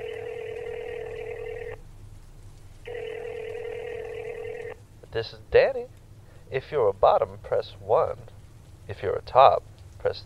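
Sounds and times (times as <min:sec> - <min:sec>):
outgoing phone call ringing tone: 0:00.0 - 0:01.8, 0:02.9 - 0:04.8
low hum: 0:00.0 - 0:10.2
speech: 0:05.1 - 0:08.3, 0:08.9 - 0:10.2.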